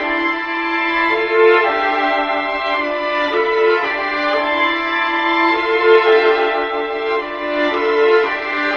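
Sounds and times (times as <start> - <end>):
sad string requiem loop: 0.0 - 8.7.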